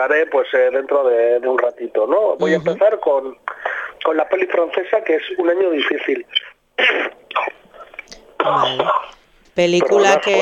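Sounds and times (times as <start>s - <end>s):
speech: 0.0s - 7.1s, 8.4s - 10.3s
person clearing throat: 6.8s - 7.6s, 8.4s - 9.2s.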